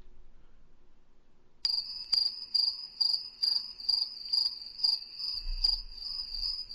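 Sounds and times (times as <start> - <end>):
cricket chirping: 1.6 - 6.7.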